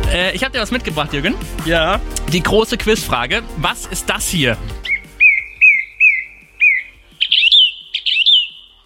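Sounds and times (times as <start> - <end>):
speech: 0.2 - 4.9
song thrush singing: 4.5 - 8.8.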